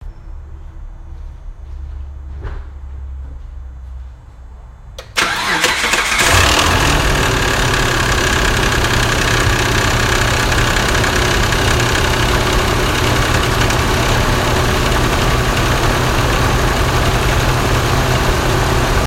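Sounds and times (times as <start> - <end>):
Mitsubishi Montero Sport engine knock rattle on cold start: 5.2 - 19.0.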